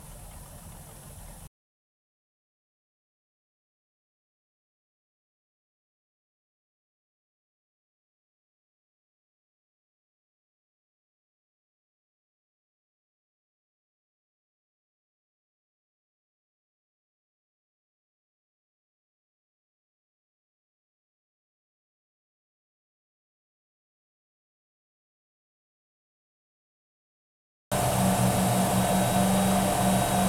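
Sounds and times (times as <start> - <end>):
Wellcraft Scarab 34 boat engine starting: 0.0 - 1.5, 27.7 - 30.2
Wellcraft Scarab 34 boat engine accelerating: 27.7 - 30.2.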